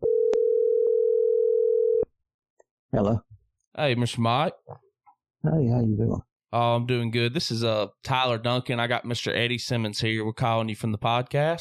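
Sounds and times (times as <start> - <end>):
telephone dial tone while placing call: 0.0 - 2.0
speech: 2.9 - 4.8, 5.4 - 11.6.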